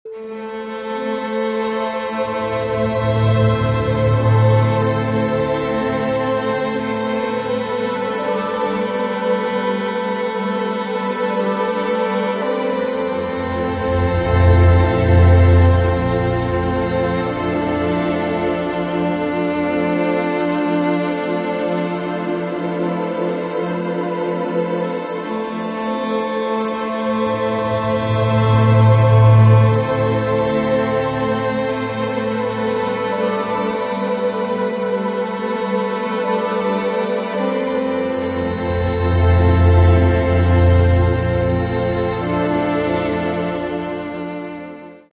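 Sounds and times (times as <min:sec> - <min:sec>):
violin particle drone: 0:00.1 - 0:45.1.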